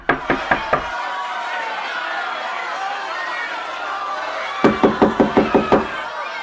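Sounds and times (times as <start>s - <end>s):
people banging on closed wooden exit doors of a theatre hall: 0.0s - 0.9s, 4.6s - 6.0s
murmur of crowd chatter: 0.0s - 6.4s.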